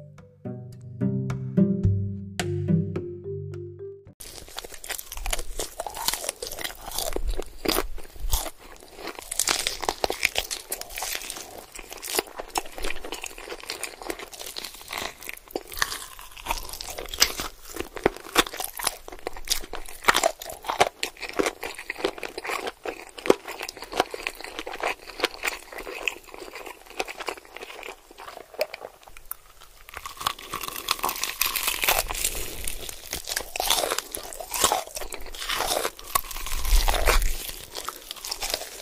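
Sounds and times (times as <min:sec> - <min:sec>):
short tonal musical bit: 0:00.0 - 0:04.2
person biting and chewing cireng, a crispy fried snack: 0:04.2 - 0:38.8.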